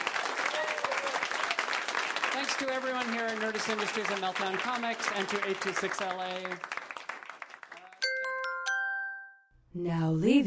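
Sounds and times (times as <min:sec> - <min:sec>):
audience applause: 0:00.0 - 0:08.1
speech: 0:02.4 - 0:06.8, 0:09.8 - 0:10.4.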